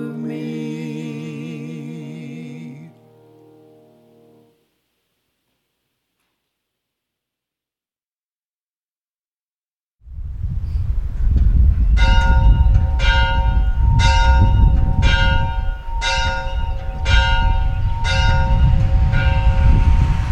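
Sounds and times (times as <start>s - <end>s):
loud continuous low rumble: 10.1s - 20.3s
church bells ringing: 11.9s - 20.1s.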